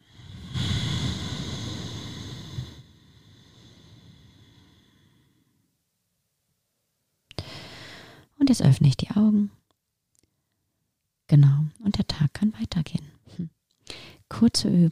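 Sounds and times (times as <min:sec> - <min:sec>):
deep breath in and out: 0:00.0 - 0:05.8, 0:07.4 - 0:08.3, 0:13.8 - 0:14.3
speech: 0:08.5 - 0:09.6, 0:11.3 - 0:14.9.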